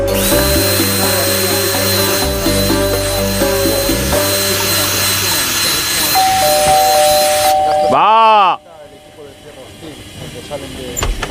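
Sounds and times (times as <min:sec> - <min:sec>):
power drill whining during small DIY repairs at home: 0:00.1 - 0:07.7
voices: 0:04.2 - 0:11.3.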